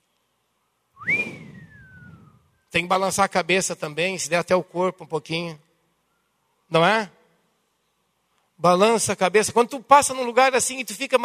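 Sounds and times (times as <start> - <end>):
faint low noise: 0.0 - 11.2
human whistle of astonishment sweeping upward then gliding down: 1.0 - 2.6
speech: 2.7 - 5.7, 6.7 - 7.2, 8.6 - 11.2.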